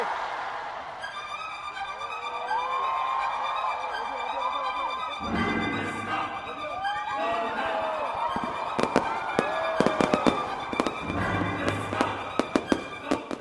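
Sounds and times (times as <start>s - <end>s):
busy crowd murmur: 0.1s - 13.3s
fireworks whistling rises: 5.2s - 13.3s
fireworks bursts opening a festival: 7.8s - 13.3s.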